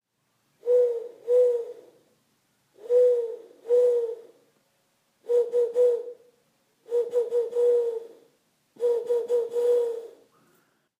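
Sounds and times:
owl hooting: 0:00.6 - 0:02.0, 0:02.7 - 0:04.4, 0:05.2 - 0:10.5.

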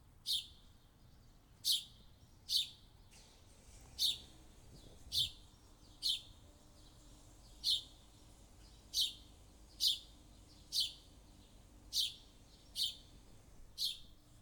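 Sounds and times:
bird chirping in the morning: 0:00.3 - 0:02.8, 0:04.0 - 0:14.2
steady background hiss: 0:03.3 - 0:14.4.

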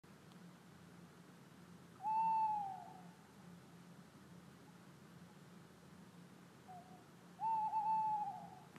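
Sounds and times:
tawny owl calling in Molkom Sweden: 0:02.0 - 0:03.3, 0:06.6 - 0:08.7.

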